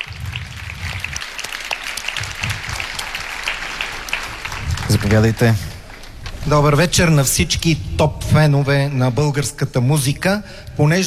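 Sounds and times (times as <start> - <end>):
audience applause: 0.0 - 7.4
speech: 4.9 - 5.7, 6.4 - 11.0.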